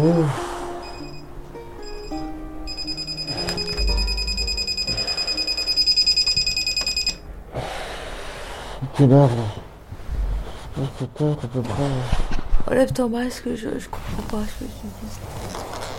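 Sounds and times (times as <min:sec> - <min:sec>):
speech: 0:00.0 - 0:00.5, 0:09.0 - 0:09.6, 0:11.0 - 0:15.4
alarm clock with shrill rapid electronic beeping: 0:00.8 - 0:07.2.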